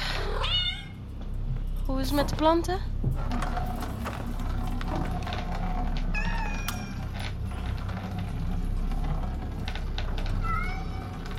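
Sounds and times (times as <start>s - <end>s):
low rumble: 0.0s - 11.3s
speech: 1.9s - 3.6s
cat meowing: 6.1s - 7.0s, 10.4s - 11.3s.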